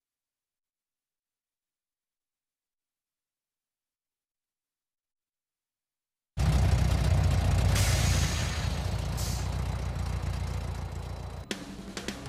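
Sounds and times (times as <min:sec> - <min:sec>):
1990 Chevy Corvette Chevy 350 small block engine idling: 0:06.4 - 0:12.2.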